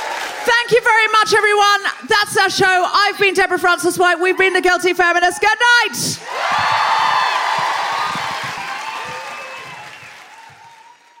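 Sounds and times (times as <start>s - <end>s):
large audience applause: 0.0s - 0.5s, 6.2s - 11.1s
speech: 0.4s - 6.7s.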